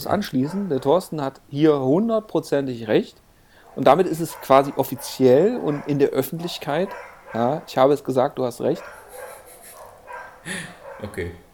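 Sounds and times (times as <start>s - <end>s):
dogs barking and yipping: 0.0s - 1.1s, 3.5s - 11.1s
speech: 0.0s - 3.2s, 3.8s - 9.0s, 10.4s - 11.4s
room noise hiss: 0.0s - 11.5s
laughter: 8.7s - 11.4s.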